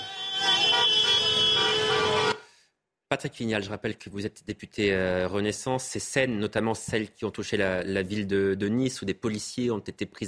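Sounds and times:
car horn blaring in celebration: 0:00.0 - 0:02.4
street noise: 0:00.0 - 0:02.4
speech: 0:03.1 - 0:10.2.

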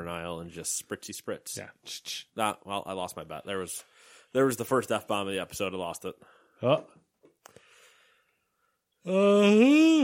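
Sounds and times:
speech: 0:00.0 - 0:07.0, 0:09.0 - 0:10.0
loud drawn-out voiced yawn bending in pitch: 0:09.0 - 0:10.0.

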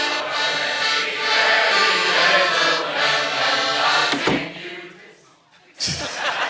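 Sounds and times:
carol singers singing at the front door: 0:00.0 - 0:06.4
bang: 0:04.1 - 0:04.6
door thud: 0:04.1 - 0:04.6
laughter: 0:05.7 - 0:06.4.

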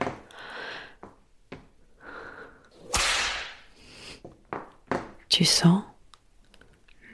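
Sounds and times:
whip swish in a BDSM domination scene: 0:02.8 - 0:03.7
speech: 0:05.4 - 0:05.9.

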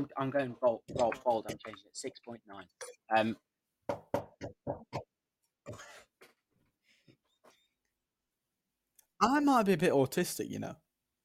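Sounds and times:
speech: 0:00.0 - 0:04.6, 0:09.2 - 0:10.8
sharp knocks on a desk: 0:03.9 - 0:05.0.

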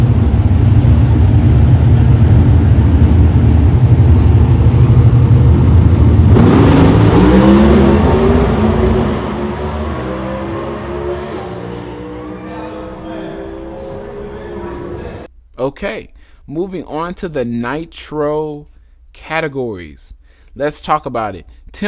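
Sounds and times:
drag racing car engine roar on a high-speed run: 0:00.0 - 0:15.3
speech: 0:15.8 - 0:21.8.

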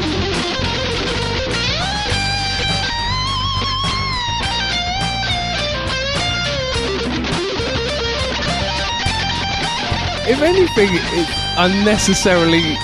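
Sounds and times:
bass: 0:00.0 - 0:12.8
drums: 0:00.0 - 0:12.8
electric guitar solo by a young guitarist: 0:10.3 - 0:12.8
speech: 0:10.3 - 0:12.8.

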